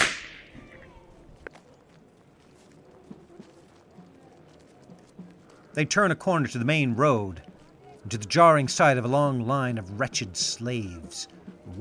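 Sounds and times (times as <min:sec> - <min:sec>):
whip crack: 0:00.0 - 0:00.6
faint hoof-like clops: 0:00.3 - 0:11.7
speech: 0:05.8 - 0:07.5, 0:08.1 - 0:11.7.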